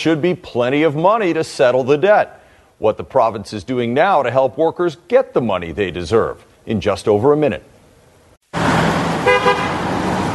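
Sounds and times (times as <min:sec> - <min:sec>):
speech: 0:00.0 - 0:07.7
road traffic roar: 0:08.4 - 0:10.3
car horn honks: 0:09.2 - 0:09.8.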